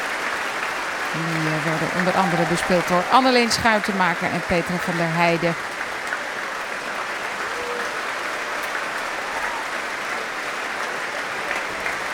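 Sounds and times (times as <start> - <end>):
large audience applause after an orchestral performance: 0.0 - 12.1
speech: 1.1 - 5.7.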